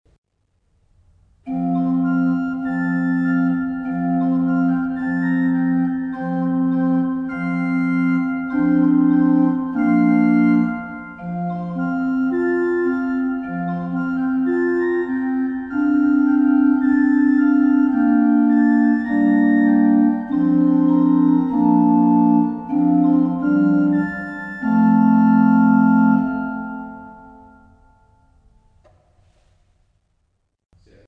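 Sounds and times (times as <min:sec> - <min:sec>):
organ prelude: 0:01.5 - 0:28.6.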